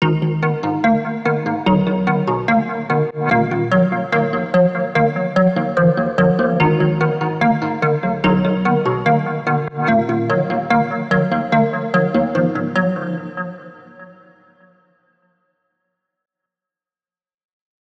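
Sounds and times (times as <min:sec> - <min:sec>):
plucked melody in E flat minor at 73 BPM: 0:00.0 - 0:13.4.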